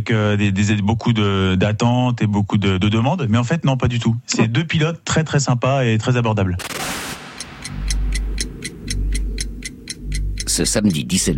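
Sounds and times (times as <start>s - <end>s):
speech: 0.0s - 7.0s, 10.6s - 11.3s
great clock at the Le Mans racing circuit ticking: 6.6s - 11.3s
low rumble: 7.0s - 11.3s.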